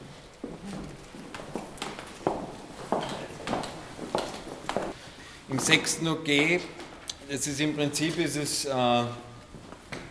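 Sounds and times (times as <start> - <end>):
footsteps climbing toward the attic floor of an old tobacco factory building: 0.0 - 5.0
speech: 5.5 - 9.3.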